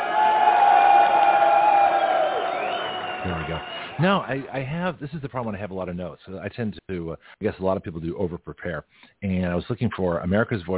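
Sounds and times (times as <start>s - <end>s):
crowd cheering and clapping: 0.0s - 4.7s
speech: 3.6s - 10.7s.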